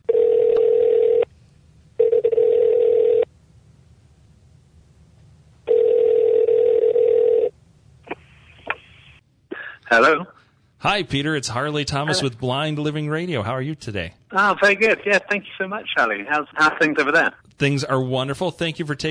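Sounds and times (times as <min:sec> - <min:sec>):
telephone tone over a phone line: 0:00.1 - 0:01.3, 0:02.0 - 0:03.3, 0:05.7 - 0:07.5
speech: 0:09.9 - 0:19.0.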